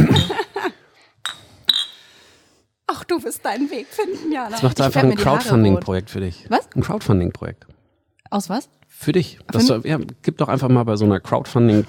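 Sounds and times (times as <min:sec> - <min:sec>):
glasses clinking in a toast: 0:01.2 - 0:02.0
speech: 0:03.2 - 0:11.8.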